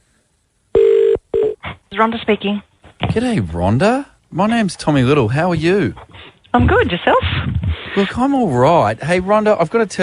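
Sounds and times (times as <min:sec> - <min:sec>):
telephone ringback tone after a number is dialed: 0:00.8 - 0:01.6
speech: 0:01.9 - 0:10.0.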